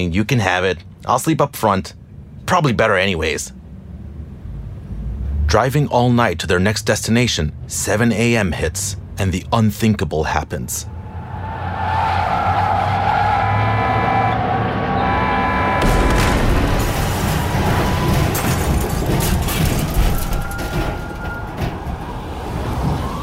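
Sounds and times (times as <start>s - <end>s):
speech: 0.0s - 3.6s, 5.5s - 11.0s
tour bus engine droning: 0.0s - 23.2s
tour bus skidding on black ice: 2.1s - 23.2s
tour bus crashing with scraping and tumbling metal: 15.8s - 22.9s.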